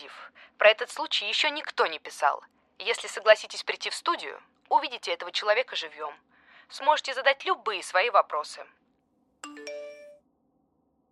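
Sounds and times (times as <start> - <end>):
speech: 0.3 - 8.8
phone message notification chime: 9.4 - 10.2.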